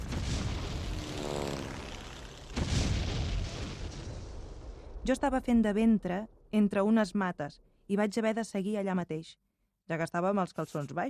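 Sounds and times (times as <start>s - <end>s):
rumbling booms: 0.0s - 1.1s, 1.9s - 6.6s
bomb explosions from warplanes: 0.0s - 5.7s
fascist warplane engines droning: 0.8s - 2.6s
speech: 5.0s - 11.0s.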